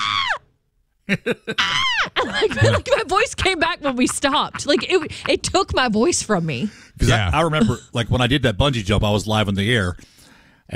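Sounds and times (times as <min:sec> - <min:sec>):
voice imitating screaming on a fast ride drop: 0:00.0 - 0:00.4, 0:01.6 - 0:02.2
laughter: 0:01.1 - 0:06.2
speech: 0:01.1 - 0:10.7.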